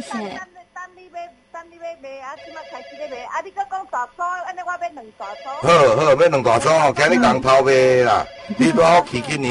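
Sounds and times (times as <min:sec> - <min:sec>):
speech: 0:00.0 - 0:00.6, 0:01.8 - 0:09.4
phone ringing with a melodic electronic ringtone: 0:05.2 - 0:09.4.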